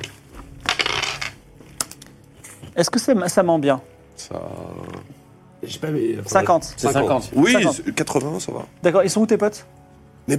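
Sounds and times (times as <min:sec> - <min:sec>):
dice clacking down onto a hard surface: 0:00.6 - 0:02.1
dice rattling and tumbling: 0:00.7 - 0:01.4
speech: 0:02.8 - 0:04.9, 0:05.6 - 0:10.3.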